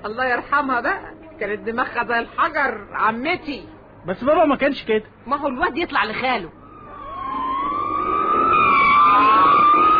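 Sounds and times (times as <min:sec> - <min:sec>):
speech: 0:00.0 - 0:06.6
police emergency vehicle siren wailing: 0:06.6 - 0:09.9.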